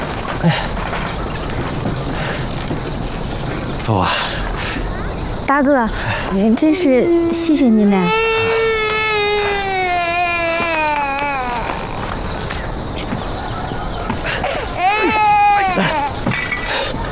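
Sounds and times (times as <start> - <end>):
steady noise: 0.0 - 17.1
speech: 0.4 - 0.9, 3.9 - 4.4, 5.5 - 8.2
baby crying: 8.0 - 12.2, 14.4 - 16.2.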